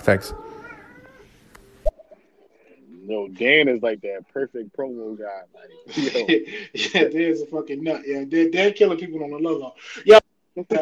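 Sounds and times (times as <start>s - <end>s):
speech: 0.1s - 0.4s, 3.1s - 10.7s
cat meowing: 0.3s - 1.3s
laughter: 5.8s - 7.4s.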